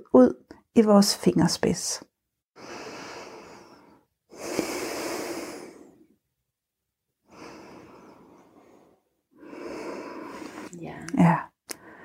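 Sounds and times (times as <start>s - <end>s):
speech: 0.0s - 2.1s
sharp nasal exhale: 2.6s - 6.1s, 7.3s - 10.8s
slow deep breaths during a relaxation exercise: 2.6s - 6.2s, 7.2s - 10.8s, 11.7s - 12.0s.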